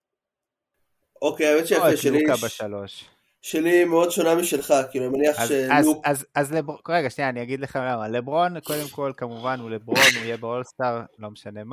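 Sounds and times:
speech: 0:01.2 - 0:11.7
sneeze: 0:09.9 - 0:10.4.

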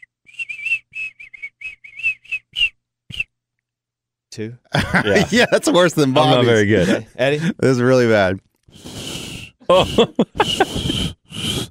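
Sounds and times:
person whistling: 0:00.0 - 0:03.3, 0:09.1 - 0:09.6
speech: 0:04.4 - 0:08.5, 0:09.7 - 0:11.2
laughter: 0:04.7 - 0:07.6, 0:09.6 - 0:11.2.

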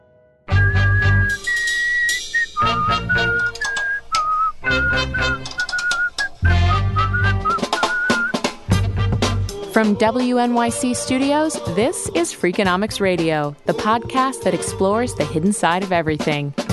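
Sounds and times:
full musical backing: 0:00.0 - 0:16.7
bright clear whistled melody: 0:00.5 - 0:08.5
speech: 0:09.8 - 0:16.6.

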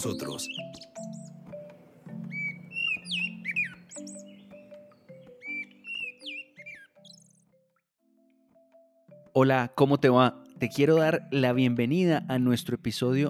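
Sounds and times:
speech: 0:00.0 - 0:01.4, 0:09.4 - 0:13.2
several birds chirping and whistling: 0:00.0 - 0:07.7.

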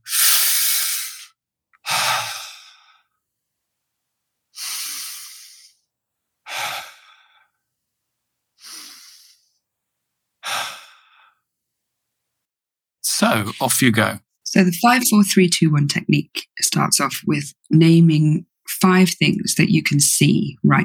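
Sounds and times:
deep breaths taken together as a group exercise: 0:00.1 - 0:03.2, 0:04.6 - 0:05.9, 0:06.5 - 0:07.6, 0:08.6 - 0:09.6, 0:10.4 - 0:11.4
speech: 0:13.2 - 0:20.8.

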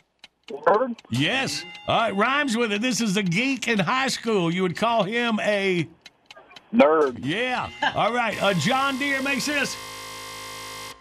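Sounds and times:
speech: 0:00.5 - 0:06.0, 0:06.7 - 0:10.0
game timer electronic buzzer: 0:07.3 - 0:10.9.

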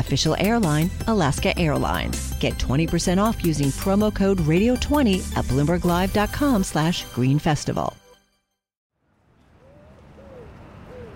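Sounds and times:
speech: 0:00.0 - 0:08.0
pigeons cooing in a park: 0:09.6 - 0:11.1.

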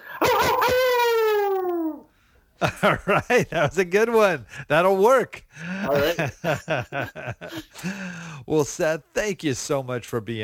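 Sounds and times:
man imitating a hound dog's howl: 0:00.2 - 0:02.1
speech: 0:02.6 - 0:10.4.

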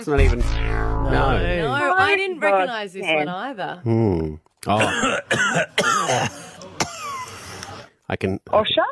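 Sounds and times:
speech: 0:00.0 - 0:06.4, 0:08.1 - 0:08.9
person coughing harshly: 0:04.8 - 0:07.1.

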